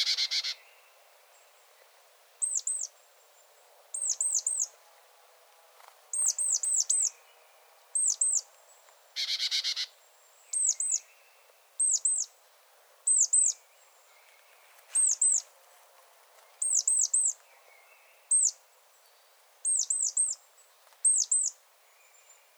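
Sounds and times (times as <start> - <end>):
great tit Parus major calling: 2.4 - 2.9, 3.9 - 4.7, 6.1 - 7.2, 8.0 - 8.5, 9.2 - 11.1, 11.8 - 12.4, 13.1 - 13.6, 15.0 - 15.5, 16.6 - 17.4, 18.2 - 18.6, 19.6 - 20.4, 21.0 - 21.6.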